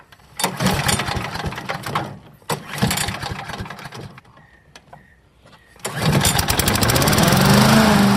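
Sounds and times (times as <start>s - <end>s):
small petrol lawnmower engine starting and running: 0.1s - 4.3s, 5.8s - 8.1s.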